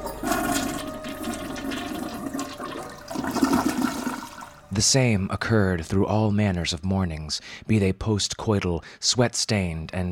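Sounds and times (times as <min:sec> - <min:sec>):
toilet flushing with rushing gurgle of water: 0:00.0 - 0:04.7
speech: 0:04.8 - 0:10.1.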